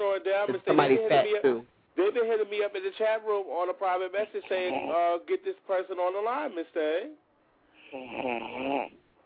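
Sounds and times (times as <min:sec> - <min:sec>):
speech: 0:00.2 - 0:07.2, 0:07.9 - 0:09.0
person snoring: 0:07.8 - 0:09.0.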